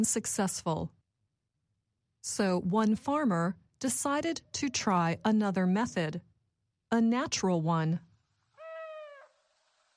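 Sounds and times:
speech: 0.0 - 1.0, 2.2 - 6.3, 6.9 - 8.1
faint hiss: 8.2 - 9.9
owl hoot: 8.6 - 9.5.

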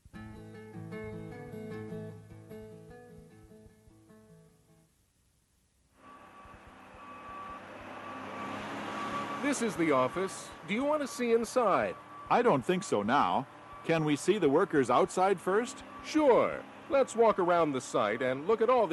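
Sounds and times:
heavy cement truck engine droning and rumbling: 6.0 - 18.9
loud hissing mechanical roar of a cement truck: 6.0 - 18.9
high-pitched reversing beeps of a cement truck: 7.0 - 14.2
speech: 9.5 - 18.9.

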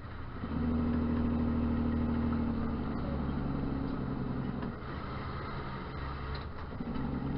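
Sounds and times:
heavy truck engine running during demonstration: 0.0 - 7.3.

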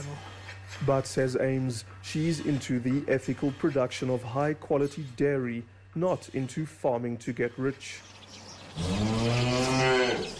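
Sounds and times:
speech: 0.2 - 8.1, 8.8 - 10.3
dairy cow mooing: 8.8 - 10.3.

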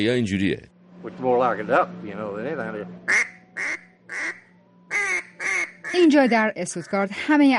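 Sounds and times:
speech: 0.0 - 3.3, 5.9 - 7.5
old-style and modern duck calls blown, quacking: 3.1 - 6.1.

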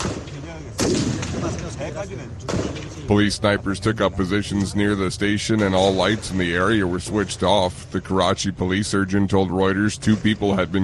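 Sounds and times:
booming explosions: 0.0 - 1.7
gunfire: 0.0 - 1.8, 2.5 - 3.1
speech: 0.6 - 10.8.

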